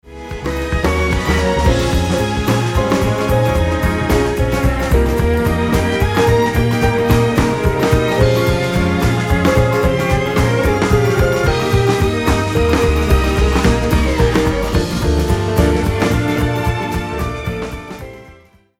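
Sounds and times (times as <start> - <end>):
string instruments: 0.0 - 18.6.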